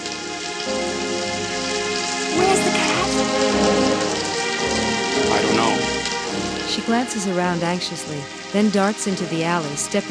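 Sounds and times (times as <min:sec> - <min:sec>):
steady rain spattering on surfaces in a city alleyway: 0:00.0 - 0:10.0
speech: 0:06.9 - 0:10.0.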